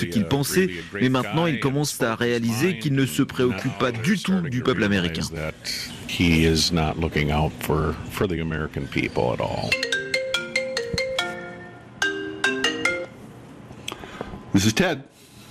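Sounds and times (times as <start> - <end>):
speech: 0.0 - 9.9, 14.6 - 15.2
phone ringing with a bright electronic melody: 9.7 - 13.3.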